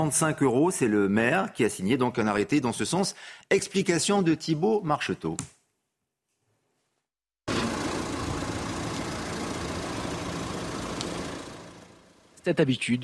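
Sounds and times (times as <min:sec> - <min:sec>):
speech: 0:00.0 - 0:05.6, 0:12.4 - 0:13.0
stationary car engine idling: 0:07.5 - 0:12.4.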